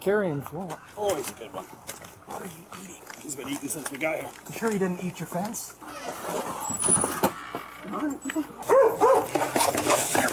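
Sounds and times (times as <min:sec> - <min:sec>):
speech: 0:00.0 - 0:07.3, 0:07.9 - 0:10.3
dog barking and yipping: 0:08.6 - 0:09.4.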